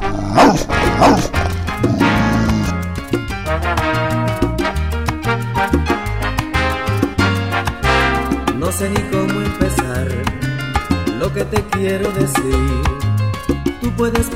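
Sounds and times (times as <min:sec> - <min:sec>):
small dog yapping: 0:00.1 - 0:02.7
loud steady rhythmic music: 0:00.7 - 0:14.3
speech: 0:14.1 - 0:14.3.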